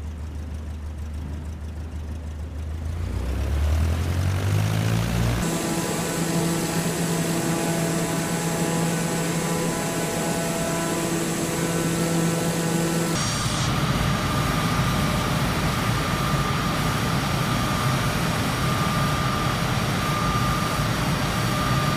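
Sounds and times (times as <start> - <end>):
airplane engine droning during takeoff: 0.0 - 21.9.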